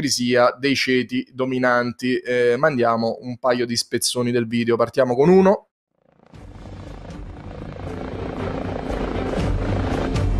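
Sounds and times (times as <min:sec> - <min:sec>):
speech: 0:00.0 - 0:05.7
helicopter rotor thumping while landing: 0:06.1 - 0:10.3.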